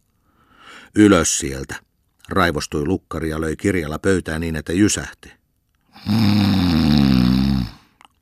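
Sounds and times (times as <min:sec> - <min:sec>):
speech: 0:00.9 - 0:05.4, 0:06.0 - 0:06.6
human voice imitating loud snoring of a man asleep sitting against a wall: 0:06.0 - 0:07.9.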